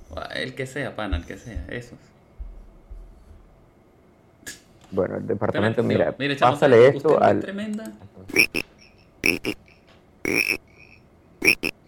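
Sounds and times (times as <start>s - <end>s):
speech: 0.1s - 2.2s, 4.9s - 8.6s, 9.4s - 9.6s, 10.3s - 10.6s
frog croaking sound effect: 8.3s - 11.8s.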